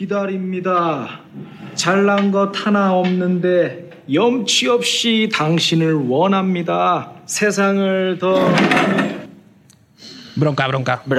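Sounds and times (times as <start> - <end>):
speech: 0.0 - 9.2, 10.4 - 11.1
chair being kicked with a scraping clatter: 8.4 - 9.4.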